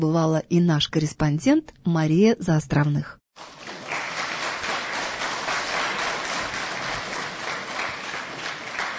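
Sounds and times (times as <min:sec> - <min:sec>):
speech: 0:00.0 - 0:03.6
audience applause: 0:03.4 - 0:08.9.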